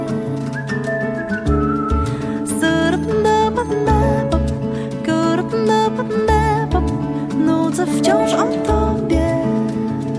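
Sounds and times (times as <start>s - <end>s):
Polish pop song backing music: 0.0s - 10.1s
person whistling a tune within a pop song: 0.3s - 2.8s
speech: 7.7s - 9.2s.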